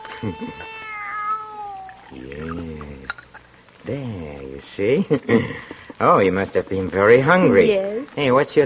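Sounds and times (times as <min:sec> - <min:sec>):
young kitten meowing: 0:00.0 - 0:02.2
speech: 0:00.2 - 0:00.8, 0:02.1 - 0:03.2, 0:03.8 - 0:08.6.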